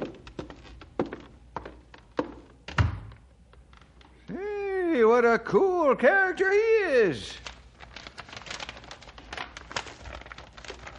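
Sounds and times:
speech: 0:05.2 - 0:07.5
taped sealed paper packet being torn open: 0:07.3 - 0:10.9.

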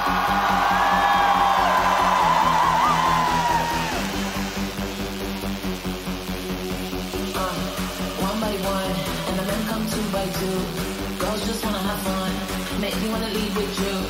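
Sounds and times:
crowd screaming and whooping: 0:00.0 - 0:04.6
steady pulsing music: 0:00.0 - 0:14.0.

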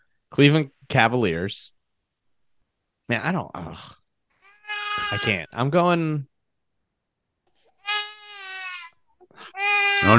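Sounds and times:
speech: 0:00.3 - 0:01.8, 0:03.1 - 0:04.0, 0:05.0 - 0:06.3, 0:10.0 - 0:10.1
toddler wailing: 0:04.4 - 0:05.4, 0:07.7 - 0:09.0, 0:09.6 - 0:10.1.

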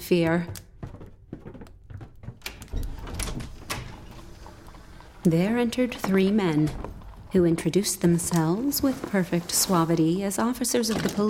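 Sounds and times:
speech: 0:00.1 - 0:00.6, 0:05.2 - 0:11.2
street door being opened: 0:02.3 - 0:07.4
street door latch rattling: 0:02.4 - 0:07.3.

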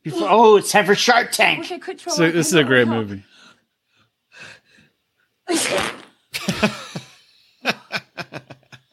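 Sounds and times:
speech: 0:00.0 - 0:03.3, 0:05.5 - 0:06.0
soft inhales: 0:03.3 - 0:05.0
woman sneezing sharply: 0:05.5 - 0:06.0
rough spluttering fart: 0:05.5 - 0:06.2
laughter: 0:06.4 - 0:08.9.

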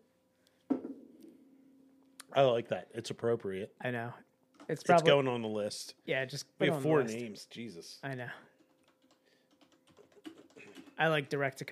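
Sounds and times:
speech: 0:02.4 - 0:08.5, 0:11.0 - 0:11.7
typing on a computer keyboard: 0:08.5 - 0:11.1.

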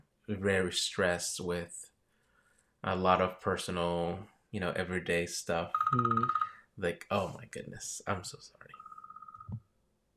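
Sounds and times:
speech: 0:00.3 - 0:01.9, 0:02.8 - 0:08.8
mobile phone ringing from an incoming call: 0:05.8 - 0:06.6, 0:08.8 - 0:09.6.

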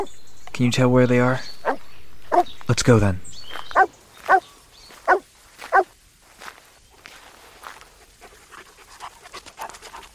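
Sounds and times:
speech: 0:00.0 - 0:01.6, 0:02.7 - 0:03.3
dog barking: 0:01.6 - 0:02.5, 0:03.7 - 0:05.9
footsteps shuffling and crunching: 0:01.6 - 0:10.1
dog panting: 0:07.9 - 0:10.1.

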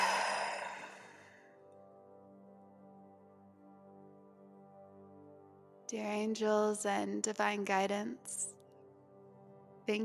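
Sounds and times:
deep breath exhaled during a grounding exercise: 0:00.0 - 0:01.4
speech: 0:05.9 - 0:08.6.

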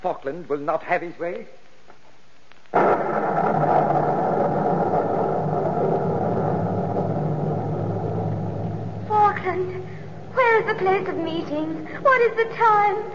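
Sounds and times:
speech: 0:00.0 - 0:01.6, 0:10.6 - 0:13.1
rolling thunder of a storm: 0:02.7 - 0:13.1.

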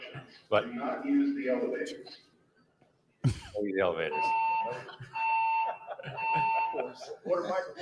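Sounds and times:
speech: 0:00.5 - 0:02.3, 0:03.2 - 0:05.1, 0:06.0 - 0:07.7
laughter: 0:03.2 - 0:07.7
building fire alarm blaring in long steady electronic tones: 0:04.1 - 0:07.0.

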